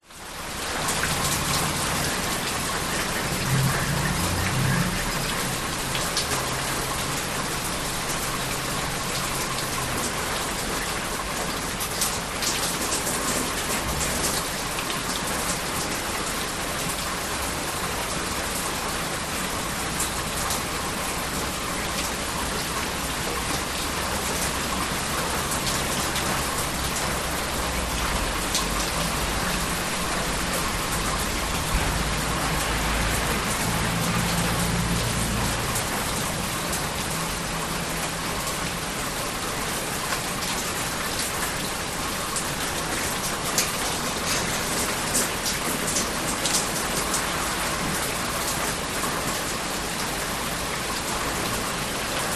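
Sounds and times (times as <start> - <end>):
light rain in a suburban back yard: 0.0 - 52.3
light passing traffic in distance: 0.2 - 9.8, 19.2 - 40.4.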